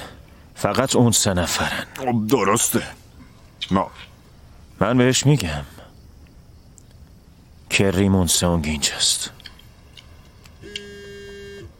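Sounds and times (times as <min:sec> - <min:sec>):
speech: 0:00.6 - 0:03.0, 0:03.6 - 0:04.1, 0:04.8 - 0:05.8, 0:07.8 - 0:09.4
phone ringing with an electronic buzzing tone: 0:10.6 - 0:11.7.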